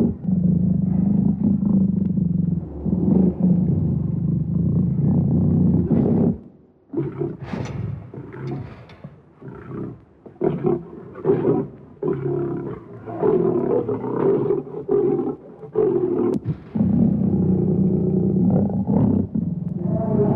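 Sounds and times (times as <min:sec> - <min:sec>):
lion roaring in grunting rasping bursts: 0:00.0 - 0:20.3.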